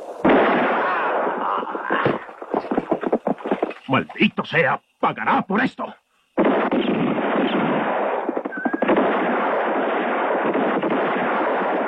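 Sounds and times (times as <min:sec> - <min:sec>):
barrage of gunshots outside a house: 0:00.2 - 0:03.6, 0:06.4 - 0:11.8
speech: 0:03.9 - 0:06.0.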